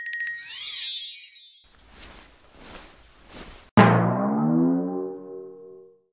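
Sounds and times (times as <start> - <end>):
downsize sound effect: 0.3 - 2.2, 3.8 - 6.1.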